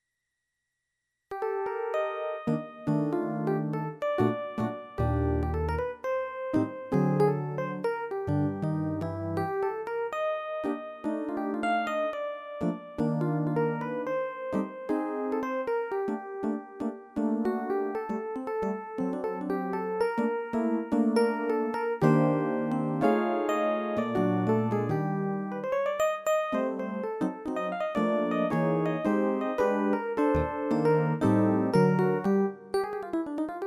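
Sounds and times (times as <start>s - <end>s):
Rhodes electric piano solo: 1.3s - 33.6s.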